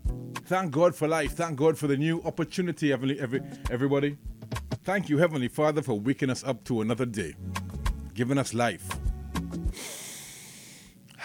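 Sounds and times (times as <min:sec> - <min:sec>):
speech: 0:00.5 - 0:07.6, 0:08.2 - 0:09.0
deep breath: 0:09.7 - 0:11.2
sniff: 0:09.7 - 0:11.2.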